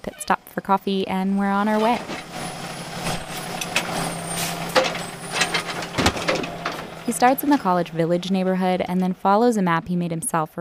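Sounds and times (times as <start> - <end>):
heavy garbage truck engine rumbling in the rain: 0.0 - 10.5
speech: 0.3 - 2.2, 7.1 - 10.5
metal clanks: 1.8 - 7.8
garbage truck air brakes hissing: 2.4 - 5.8.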